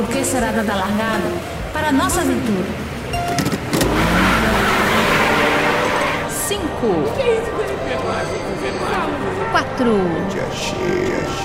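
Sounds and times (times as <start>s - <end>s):
speech: 0.0s - 4.2s, 6.5s - 11.4s
car engine revving and accelerating: 2.6s - 6.8s.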